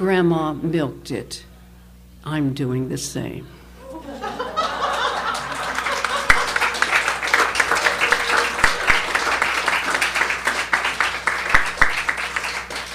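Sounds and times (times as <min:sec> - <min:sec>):
speech: 0:00.0 - 0:01.5, 0:02.2 - 0:04.2
scattered laughter: 0:03.8 - 0:06.8
crowd applause: 0:04.1 - 0:12.9.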